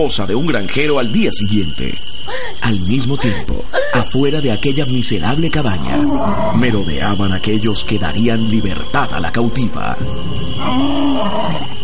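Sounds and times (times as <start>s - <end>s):
speech: 0.0s - 11.8s
lion roaring: 5.8s - 6.7s, 10.6s - 11.8s.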